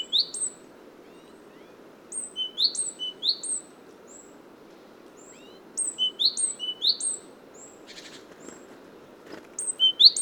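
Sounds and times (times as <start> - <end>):
great tit Parus major calling: 0.0 - 0.6, 2.1 - 3.7, 5.2 - 7.7, 9.6 - 10.1.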